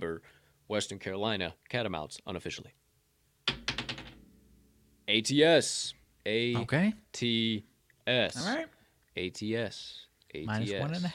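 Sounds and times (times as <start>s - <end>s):
speech: 0.0s - 2.8s, 5.1s - 11.1s
dice rolled onto a hard table to decide a sports bet: 3.5s - 4.2s.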